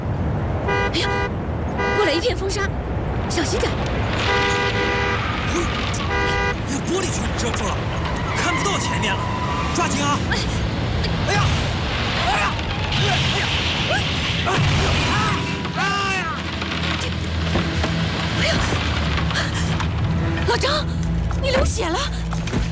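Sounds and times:
car driving with steady road rumble: 0.0 - 22.7
car horn honking: 0.7 - 2.2, 4.2 - 6.8.

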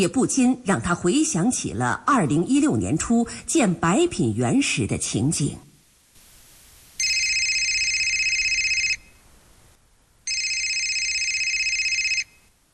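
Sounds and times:
speech: 0.0 - 5.7
faint hiss: 0.0 - 12.7
telephone ringing with electronic trill: 7.0 - 9.2, 10.2 - 12.5.

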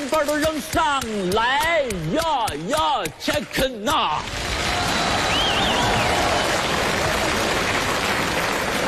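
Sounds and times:
speech: 0.2 - 4.4
large audience applause: 4.2 - 8.8
whistles and cheers: 4.4 - 7.9.

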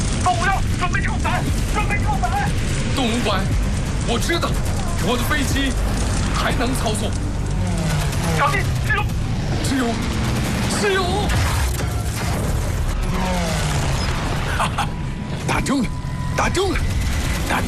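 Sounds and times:
machine gun fire from fighter planes in an aerial battle: 0.0 - 13.0
steady mechanical engine drone: 0.0 - 17.6.

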